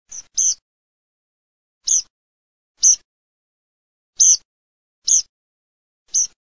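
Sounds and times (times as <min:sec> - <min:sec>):
tree pipit singing: 0:00.1 - 0:00.6, 0:01.9 - 0:02.1, 0:02.8 - 0:03.0, 0:04.2 - 0:04.4, 0:05.1 - 0:05.3, 0:06.1 - 0:06.4.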